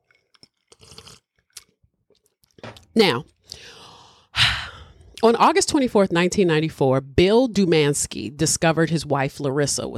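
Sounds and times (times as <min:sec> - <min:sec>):
wet sipping and slurping from a drink: 0:00.0 - 0:01.8
speech: 0:03.0 - 0:03.3, 0:05.2 - 0:09.9.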